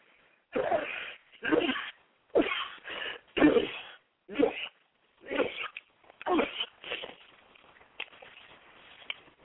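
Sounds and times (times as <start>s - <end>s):
funny-sounding sneezes: 0.5s - 7.1s.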